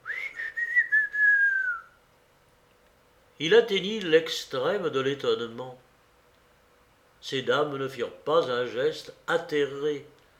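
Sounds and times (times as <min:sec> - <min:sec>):
man whistling softly through pursed lips: 0:00.0 - 0:02.0
speech: 0:03.4 - 0:05.9, 0:07.2 - 0:10.2.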